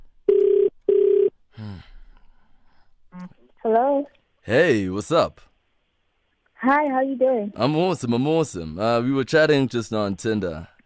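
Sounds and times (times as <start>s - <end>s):
ringback tones from an outgoing phone call: 0.3s - 1.3s
speech: 3.7s - 5.5s, 6.6s - 10.8s.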